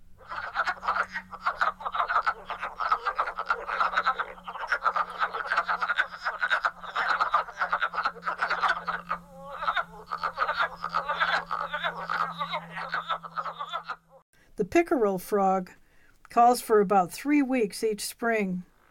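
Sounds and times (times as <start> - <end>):
steady low hum: 0.0 - 14.2
wood frogs calling in a chorus of hoarse clucking croaks: 0.2 - 14.2
speech: 14.8 - 15.8, 16.4 - 18.7.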